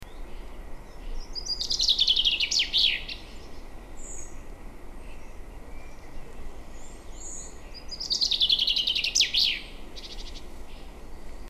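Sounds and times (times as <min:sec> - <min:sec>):
common chaffinch Fringilla coelebs singing: 0:00.0 - 0:11.4
low rushing background noise: 0:00.0 - 0:11.4.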